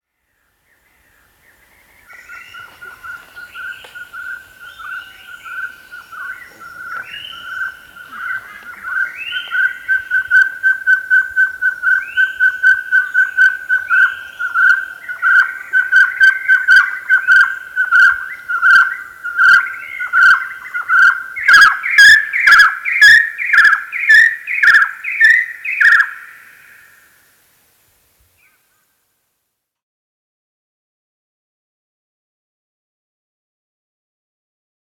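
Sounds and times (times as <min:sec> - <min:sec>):
partridge calling: 0:02.1 - 0:26.9.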